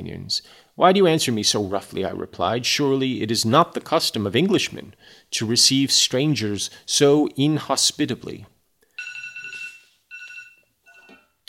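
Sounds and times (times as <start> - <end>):
speech: 0.0 - 8.5
phone alarm ringing with electronic chiming tones: 8.9 - 11.4.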